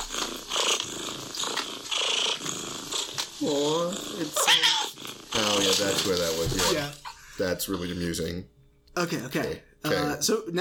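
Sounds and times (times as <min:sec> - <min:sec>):
cat purring: 0:00.0 - 0:07.1
speech: 0:03.4 - 0:04.8, 0:05.4 - 0:10.6.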